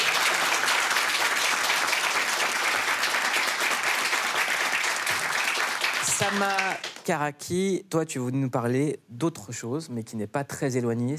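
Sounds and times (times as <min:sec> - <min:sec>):
studio audience clapping enthusiastically: 0:00.0 - 0:07.1
speech: 0:06.2 - 0:11.1.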